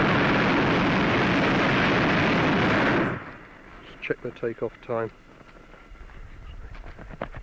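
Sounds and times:
hot-air balloon's gas burner firing: 0:00.0 - 0:04.7
speech: 0:04.1 - 0:05.3.

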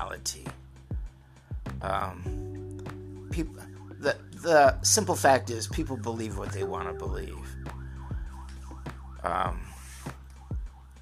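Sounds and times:
speech: 0:00.0 - 0:00.6, 0:01.8 - 0:02.5, 0:03.4 - 0:07.7, 0:09.2 - 0:09.7
ambulance siren wailing in a rise-and-fall pattern: 0:02.9 - 0:11.0.

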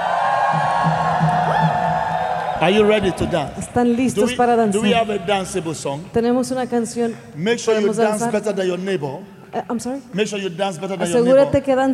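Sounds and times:
rising whoops: 0:00.0 - 0:02.8
crowd shouting and cheering in praise to God: 0:00.0 - 0:03.8
speech: 0:02.6 - 0:11.9.

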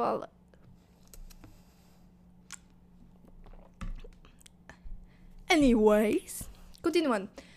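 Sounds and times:
speech: 0:00.0 - 0:00.4, 0:05.5 - 0:07.5
low steady hum: 0:00.0 - 0:07.5
soft wet mouth clicks: 0:01.0 - 0:01.4, 0:02.4 - 0:04.7
person gulping water: 0:03.1 - 0:04.8.

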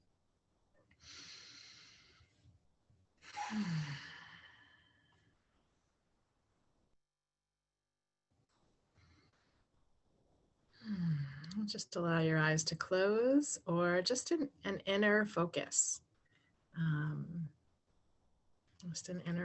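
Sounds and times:
deep breathing during a group breathing exercise: 0:01.0 - 0:02.5, 0:03.2 - 0:05.5
speech: 0:03.5 - 0:04.0, 0:11.7 - 0:16.0, 0:16.8 - 0:17.4, 0:18.8 - 0:19.4.

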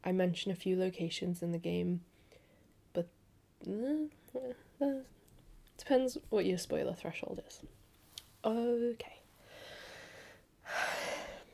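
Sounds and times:
speech: 0:00.0 - 0:02.1, 0:02.9 - 0:05.2, 0:05.8 - 0:07.8, 0:08.4 - 0:09.8
heavy breathing from a person recovering from COVID: 0:09.4 - 0:11.5.

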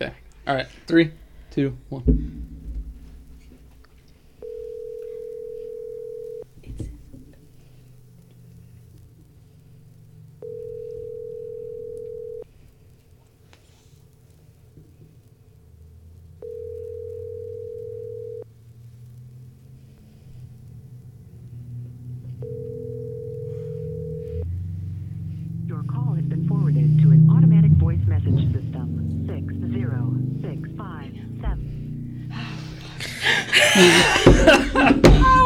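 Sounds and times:
speech: 0:00.0 - 0:02.4
laughter: 0:00.0 - 0:02.6, 0:03.8 - 0:07.8, 0:09.7 - 0:12.9, 0:14.9 - 0:18.1, 0:19.1 - 0:21.9, 0:23.6 - 0:27.7, 0:34.0 - 0:35.4
low rumbling background: 0:00.0 - 0:12.3, 0:17.3 - 0:34.6
phone ringback tone from an outgoing call: 0:04.4 - 0:06.5, 0:10.4 - 0:12.4, 0:16.4 - 0:18.4, 0:22.4 - 0:24.4.

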